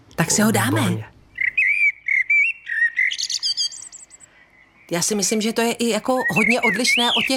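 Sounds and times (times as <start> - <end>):
speech: 0.2 - 1.1, 4.9 - 7.3
common blackbird singing: 1.3 - 7.3.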